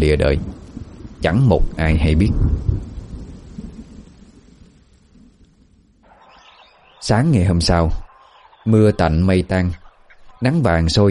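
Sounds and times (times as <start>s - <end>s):
speech: 0.0s - 0.6s, 1.2s - 2.9s, 7.0s - 8.0s, 8.7s - 9.8s, 10.4s - 11.0s
faint low thunder rumble from a lightning strike in a storm: 0.0s - 8.1s.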